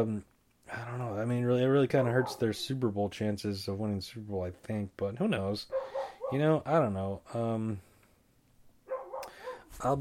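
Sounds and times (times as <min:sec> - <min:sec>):
speech: 0:00.0 - 0:07.9, 0:09.7 - 0:10.0
dog barking: 0:02.0 - 0:02.6, 0:05.7 - 0:06.5, 0:08.9 - 0:09.7.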